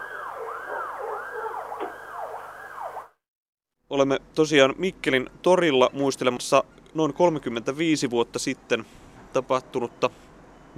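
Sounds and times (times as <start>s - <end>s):
fire engine siren wailing in Mikkeli Finland: 0.0s - 3.2s
speech: 3.9s - 10.7s.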